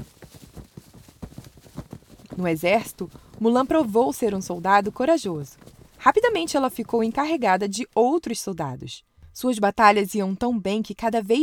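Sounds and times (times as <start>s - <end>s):
family's horse trotting with hooves clip-clopping: 0.0s - 7.5s
soft rustling background: 0.0s - 8.2s
speech: 2.4s - 11.4s.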